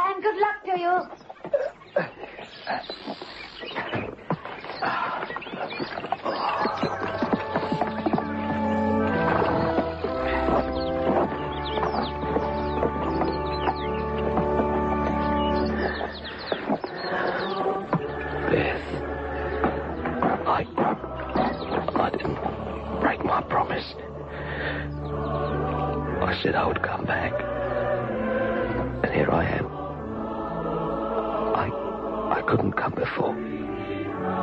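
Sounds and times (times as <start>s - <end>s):
bright tonal birdsong: 0.0s - 34.4s
speech: 0.8s - 1.2s
horses stamping and clip-clopping outside a church: 0.9s - 23.6s
horse snorting: 4.8s - 22.6s.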